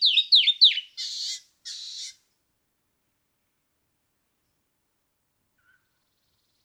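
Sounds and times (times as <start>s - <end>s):
canyon wren singing: 0.0s - 2.1s.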